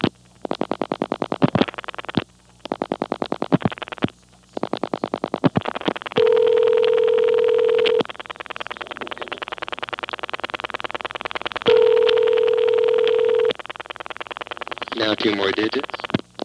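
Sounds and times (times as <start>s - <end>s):
scattered clicks on the telephone line: 0.0s - 16.4s
electronic telephone ringback tones: 6.2s - 8.0s, 11.7s - 13.6s
speech: 15.2s - 16.0s.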